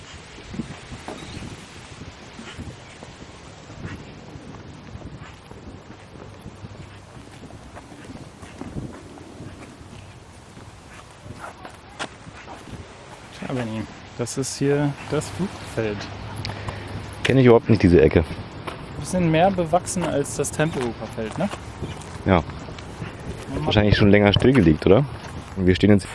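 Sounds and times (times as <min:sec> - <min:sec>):
faint footsteps: 0:00.0 - 0:26.1
wind rustling through poplar leaves: 0:00.0 - 0:26.1
speech: 0:13.5 - 0:16.2, 0:17.3 - 0:18.4, 0:19.1 - 0:22.6, 0:23.7 - 0:26.1.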